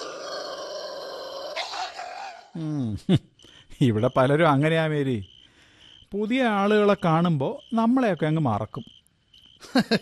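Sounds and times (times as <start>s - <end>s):
dog barking and growling: 0.0s - 2.6s
speech: 2.6s - 5.3s, 6.1s - 9.0s, 9.6s - 10.0s.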